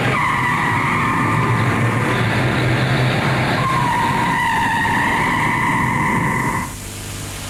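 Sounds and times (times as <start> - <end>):
car tires squealing in a parking garage: 0.0 - 2.3, 3.2 - 6.8.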